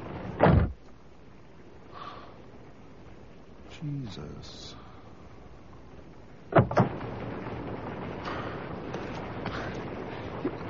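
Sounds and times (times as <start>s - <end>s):
noise: 0.0s - 10.6s
door slamming shut: 0.4s - 0.8s, 6.5s - 7.0s
sharp double thud: 0.4s - 0.8s
speech: 3.8s - 4.8s.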